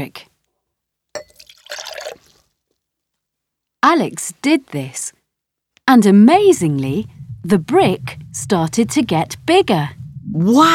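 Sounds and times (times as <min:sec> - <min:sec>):
speech: 0:00.0 - 0:00.3, 0:03.8 - 0:05.2, 0:05.9 - 0:10.7
liquid pouring in a gurgling rush: 0:01.2 - 0:02.5.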